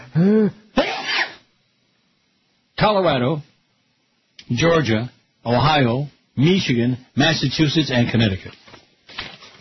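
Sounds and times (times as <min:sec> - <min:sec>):
person sneezing: 0:00.0 - 0:01.5
speech: 0:00.2 - 0:00.6, 0:02.8 - 0:03.5, 0:04.5 - 0:09.3.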